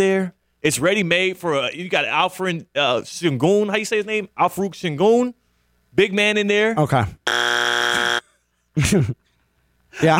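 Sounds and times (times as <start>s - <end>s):
speech: 0.0s - 5.4s, 6.0s - 7.5s, 8.8s - 9.2s, 10.0s - 10.1s
loud flat studio buzzer: 7.3s - 8.3s.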